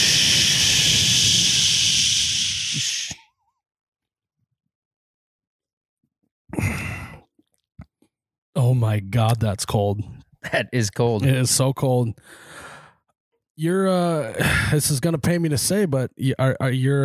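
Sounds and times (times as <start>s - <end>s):
Busch Light beer can hissing as it is cracked open: 0.0s - 3.2s
speech: 8.7s - 12.8s, 13.6s - 17.0s.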